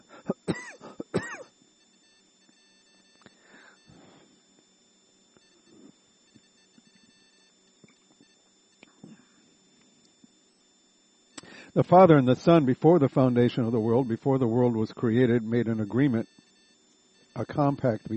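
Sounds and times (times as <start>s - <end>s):
man clearing throat and coughing mid-sermon: 0.1s - 1.5s, 9.0s - 9.4s
speech: 11.7s - 16.5s, 17.4s - 18.1s.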